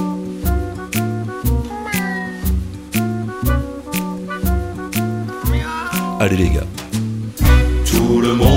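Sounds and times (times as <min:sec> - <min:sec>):
bouncy musical backing with a steady regular beat: 0:00.0 - 0:08.5
voices imitating cat meows in a song: 0:01.6 - 0:02.6, 0:05.3 - 0:06.7
speech: 0:06.2 - 0:06.7.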